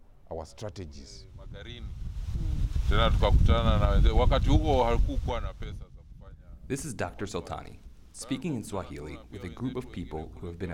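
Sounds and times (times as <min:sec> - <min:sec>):
speech: 0:00.3 - 0:05.9, 0:06.7 - 0:10.7
wind buffeting the microphone outdoors in a village: 0:01.1 - 0:07.8.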